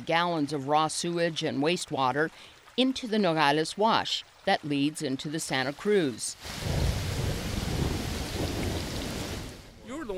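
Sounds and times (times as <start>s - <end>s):
speech: 0.0s - 6.8s
heavy monsoon rain pouring in Nogales: 6.3s - 10.1s
deep monsoon thunder rumbling in Nogales: 6.4s - 9.8s.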